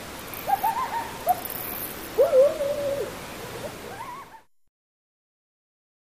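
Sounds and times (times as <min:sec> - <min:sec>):
coyote howling: 0:00.4 - 0:04.5.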